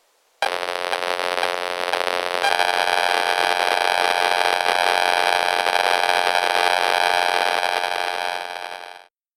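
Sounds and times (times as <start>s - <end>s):
electromagnetic waves from Bluetooth 2.4 GHz computer keyboard pairing: 0.4s - 9.1s.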